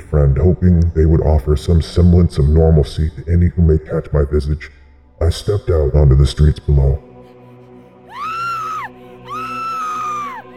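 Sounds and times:
speech: 0:00.1 - 0:07.1
wretched shrill screech on a street: 0:08.1 - 0:10.5.

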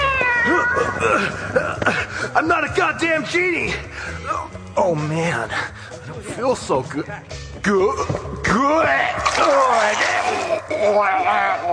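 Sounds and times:
speech: 0:01.1 - 0:11.7
large cat yowling: 0:08.9 - 0:11.7.

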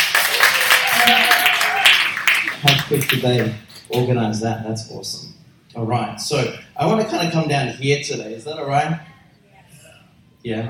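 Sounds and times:
crowd applauding: 0:00.0 - 0:03.9
person whooping: 0:00.1 - 0:02.2
speech: 0:03.2 - 0:09.1, 0:10.4 - 0:10.6.

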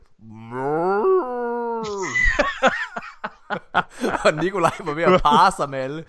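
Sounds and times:
speech: 0:00.2 - 0:00.5, 0:02.6 - 0:02.8, 0:03.5 - 0:06.0
person imitating a cow's moo: 0:00.2 - 0:02.2
breathy laughter: 0:01.8 - 0:05.1.

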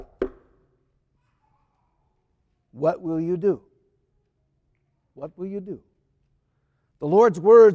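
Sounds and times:
knock on wood: 0:00.0 - 0:00.5
speech: 0:02.8 - 0:03.7, 0:05.2 - 0:05.9, 0:07.0 - 0:07.7.

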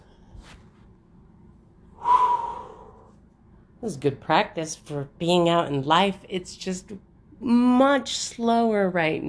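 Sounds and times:
deep breath during a slow 4-7-8 breathing exercise: 0:02.0 - 0:03.2
speech: 0:03.8 - 0:09.2.

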